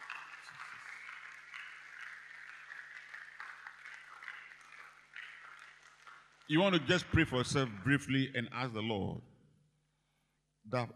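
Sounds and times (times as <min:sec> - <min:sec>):
audience clapping: 0:00.0 - 0:08.6
speech: 0:06.5 - 0:09.3, 0:10.7 - 0:10.9.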